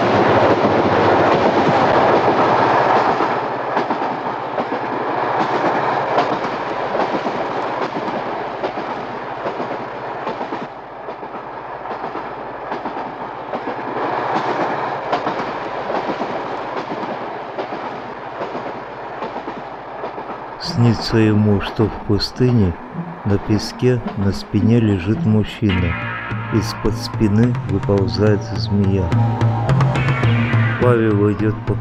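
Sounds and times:
commuter train wheels clickety-clack: 0:00.0 - 0:22.6
regional electric commuter train riding along the rails: 0:00.0 - 0:31.7
speech: 0:21.1 - 0:31.7.

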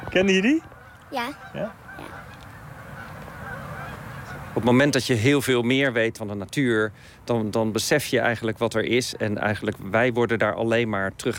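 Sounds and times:
flock of Canada geese honking while flying over: 0:00.0 - 0:05.0
outdoor noise: 0:00.0 - 0:11.3
speech: 0:00.2 - 0:01.8, 0:04.6 - 0:11.3.

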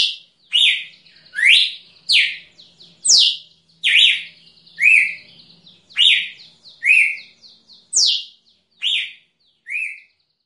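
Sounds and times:
female Red-cowled cardinal whistling slurred notes: 0:00.0 - 0:05.3, 0:05.9 - 0:10.1.

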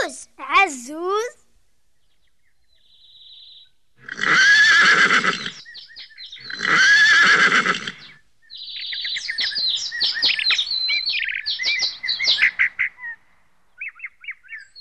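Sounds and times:
birds chirping and twittering: 0:00.0 - 0:14.7
speech: 0:00.1 - 0:01.4
horse neighing: 0:04.0 - 0:05.6, 0:06.4 - 0:08.1.

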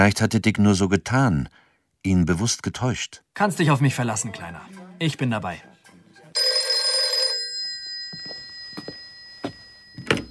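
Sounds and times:
speech: 0:00.0 - 0:05.7
telephone bell ringing at night: 0:06.4 - 0:10.2.

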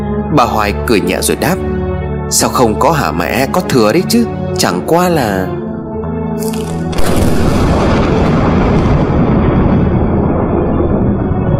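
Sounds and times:
speech: 0:00.3 - 0:01.7, 0:02.3 - 0:05.6, 0:06.4 - 0:07.5
heavy rain: 0:06.4 - 0:11.5
loud thunderclap and deep rumbling behind a garden: 0:06.9 - 0:11.5.

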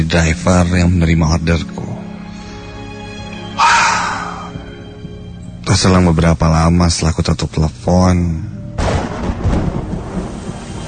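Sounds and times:
speech: 0:00.0 - 0:01.8, 0:05.7 - 0:08.6
sudden heavy rain pouring down outside: 0:08.8 - 0:10.8
thunder rumbling in a thunderstorm: 0:08.8 - 0:10.8.

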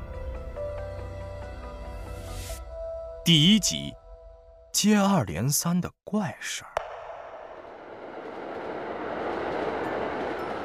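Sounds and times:
speech: 0:03.2 - 0:04.0, 0:04.8 - 0:06.8
passenger train rumbling as heard from inside the carriage: 0:07.7 - 0:10.6.

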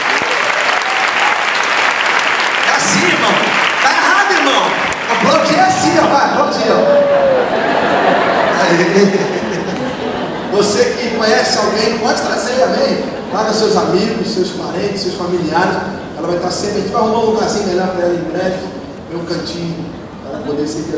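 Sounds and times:
congregation clapping at a church service: 0:00.0 - 0:05.9
speech: 0:04.5 - 0:07.5, 0:08.7 - 0:09.4, 0:10.6 - 0:20.9
laughter: 0:06.7 - 0:11.7, 0:12.4 - 0:14.4.

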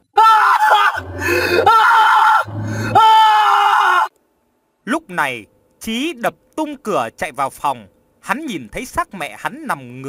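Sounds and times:
man screaming in terror: 0:00.0 - 0:04.1
speech: 0:05.1 - 0:10.0.

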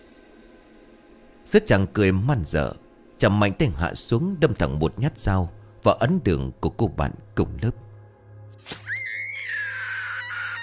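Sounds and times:
steady low hum: 0:00.0 - 0:08.5
speech: 0:01.5 - 0:07.8
terrified scream in a horror scene: 0:08.7 - 0:10.6.

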